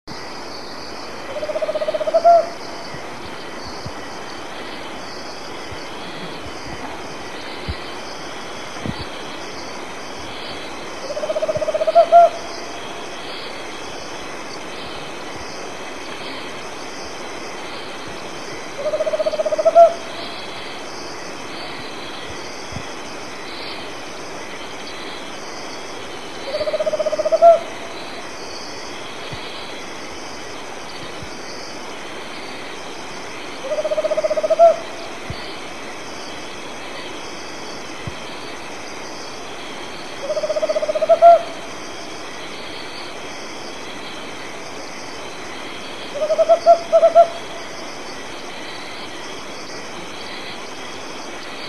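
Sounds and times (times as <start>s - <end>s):
Tropical Screech-Owl Otus choliba calling: 1.3s - 2.6s, 11.0s - 12.5s, 18.8s - 20.2s, 26.5s - 27.7s, 33.6s - 35.1s, 40.2s - 41.6s, 46.1s - 47.5s.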